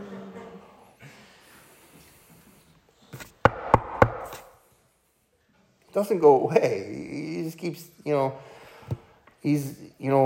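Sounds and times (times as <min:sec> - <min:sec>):
knocking on a door: 0:03.5 - 0:04.2
speech: 0:06.0 - 0:10.2.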